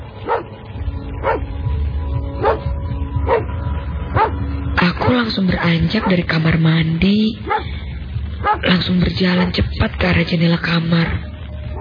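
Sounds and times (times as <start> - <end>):
low rumbling background: 0.0 - 11.7
dog barking in sharp single woofs: 0.2 - 0.5, 1.2 - 1.4, 2.4 - 2.6, 3.3 - 3.5, 4.2 - 5.3, 5.9 - 6.4, 7.4 - 7.7, 8.4 - 8.7, 9.3 - 9.6
speech: 5.2 - 7.7, 8.6 - 11.2.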